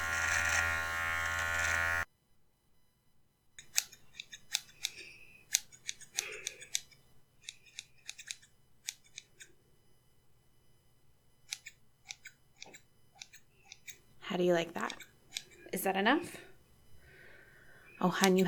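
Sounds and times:
short electric buzz: 0.0 - 2.1
scissors snipping through hair: 0.1 - 2.0, 3.6 - 9.5, 11.5 - 14.0, 14.8 - 15.6, 18.2 - 18.4
speech: 14.4 - 15.1, 15.8 - 16.5, 18.0 - 18.4.

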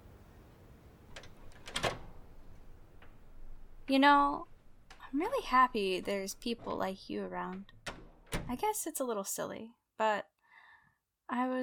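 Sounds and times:
mechanical clicks of a door being opened: 1.1 - 3.9, 5.7 - 8.6
rattle of door latch and handle: 1.1 - 8.6
speech: 3.9 - 4.5, 5.1 - 7.8, 8.5 - 10.3, 11.3 - 11.6.

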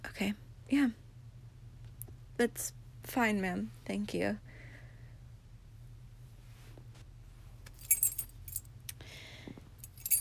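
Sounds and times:
low steady hum: 0.0 - 10.1
speech: 0.2 - 1.0, 2.4 - 4.5
set of room keys jangling: 7.7 - 8.7, 9.8 - 10.1.

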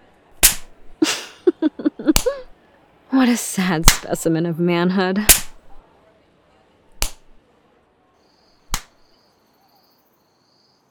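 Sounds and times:
sharp slaps: 0.4 - 1.0, 2.0 - 2.5, 3.8 - 4.2, 5.2 - 5.8, 6.9 - 7.4, 8.7 - 9.0
laughter: 1.0 - 2.5
speech: 3.2 - 5.4.

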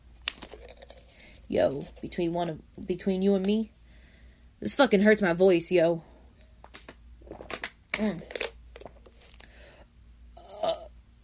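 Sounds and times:
soft crinkly rustles: 0.4 - 2.5, 6.4 - 9.5
speech: 1.5 - 3.8, 4.6 - 6.1, 8.0 - 8.3
small burp after drinking water: 10.4 - 10.9.

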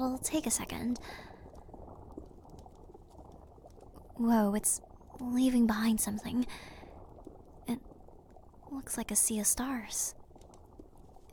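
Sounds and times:
speech: 0.0 - 1.4, 4.2 - 6.8, 7.7 - 7.9, 8.7 - 10.2
potion bubbling and fizzing as it burns in a video game: 0.0 - 11.3.

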